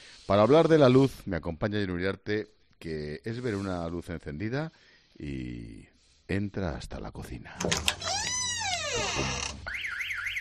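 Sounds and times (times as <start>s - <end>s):
speech: 0.3s - 8.2s, 9.0s - 9.8s
loud electronic security alarm blaring: 9.7s - 10.3s.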